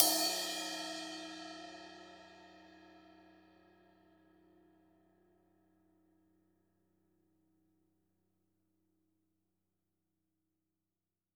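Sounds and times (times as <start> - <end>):
trash cymbal: 0.0 - 2.5.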